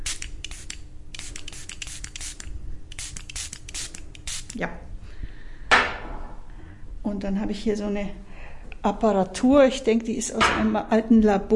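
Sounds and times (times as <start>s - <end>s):
spray bottle spritzing water onto plants: 0.0s - 4.6s
speech: 4.6s - 4.9s, 7.1s - 11.5s.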